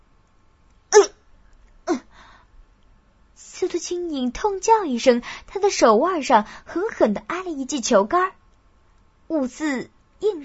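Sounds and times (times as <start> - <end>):
person coughing: 1.0 - 1.2
faint breathy trailing sound: 1.9 - 2.6
speech: 3.7 - 8.4, 9.3 - 10.4.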